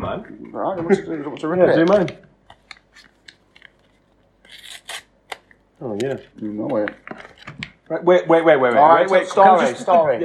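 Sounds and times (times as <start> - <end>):
speech: 0.1 - 2.3, 5.8 - 10.2
scissors rasping through packaging material: 3.0 - 5.5.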